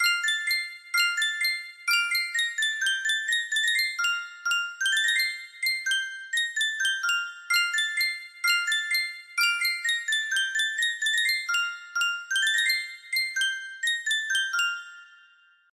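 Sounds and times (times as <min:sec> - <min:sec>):
Sankyo 12 note music box: 0:00.0 - 0:15.7.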